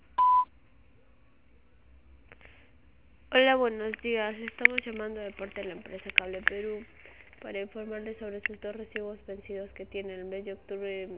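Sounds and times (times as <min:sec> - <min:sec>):
voicemail system beep: 0:00.2 - 0:00.5
speech: 0:03.6 - 0:11.1.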